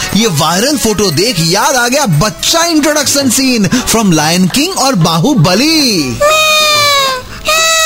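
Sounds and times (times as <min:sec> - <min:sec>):
speech: 0:00.2 - 0:06.9
person imitating a crying baby: 0:06.0 - 0:07.8.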